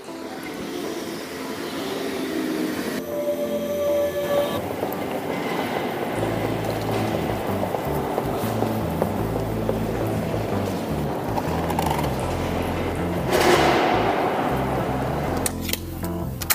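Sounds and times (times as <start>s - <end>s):
regional train pulling into a station platform: 0.0s - 16.4s
high metallic train wheel squeal: 0.1s - 8.0s.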